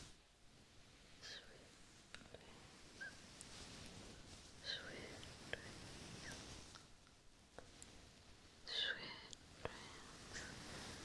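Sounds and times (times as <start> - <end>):
low hiss: 0.0 - 11.0
hands rustling through hair in a head and scalp massage: 2.8 - 7.0, 9.7 - 11.0.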